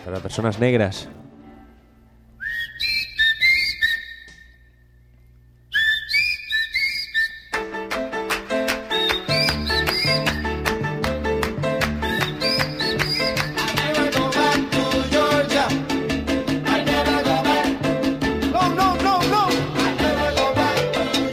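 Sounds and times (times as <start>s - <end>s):
speech: 0.0s - 1.2s
whistle blowing shrill warbling tones: 2.4s - 7.7s, 8.8s - 10.5s, 12.0s - 13.7s
lively band playing: 7.6s - 21.3s.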